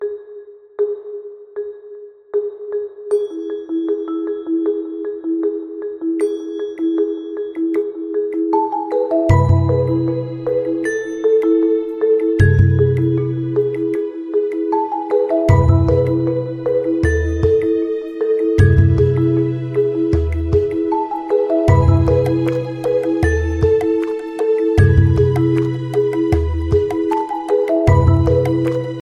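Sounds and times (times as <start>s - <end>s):
Huawei Nova phone alarm ringtone: 2.6s - 20.1s, 20.8s - 29.0s.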